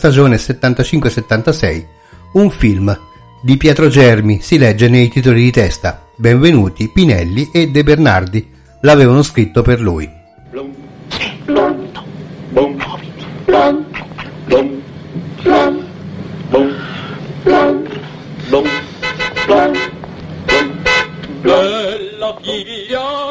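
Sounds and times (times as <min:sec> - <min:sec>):
speech: 0:00.0 - 0:11.6, 0:13.5 - 0:14.8, 0:16.5 - 0:17.8, 0:21.4 - 0:23.2
toy horn blown by men in short nasal honks: 0:17.5 - 0:21.7.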